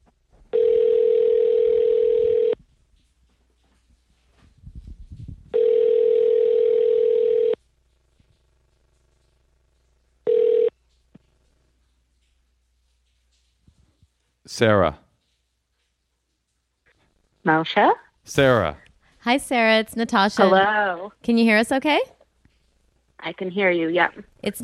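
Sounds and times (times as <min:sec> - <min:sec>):
telephone call tone while placing a call: 0:00.5 - 0:02.6, 0:05.6 - 0:07.6, 0:10.3 - 0:10.8
speech: 0:14.6 - 0:15.0, 0:17.5 - 0:22.2, 0:23.2 - 0:24.6.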